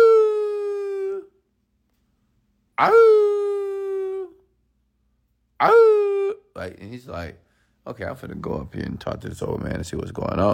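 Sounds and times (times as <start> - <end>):
person imitating a dog howling on a doorstep: 0.0 - 1.4, 2.8 - 4.5, 5.6 - 6.6
speech: 2.8 - 3.2, 6.6 - 10.5.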